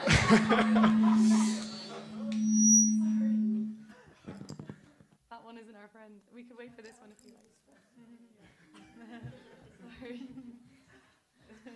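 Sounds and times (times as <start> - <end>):
people chuckling and laughing: 0.0 - 2.2, 8.0 - 10.7
thin high whine: 0.0 - 4.7
droning microphone feedback tone in a room: 0.0 - 4.8
speech: 0.3 - 1.7.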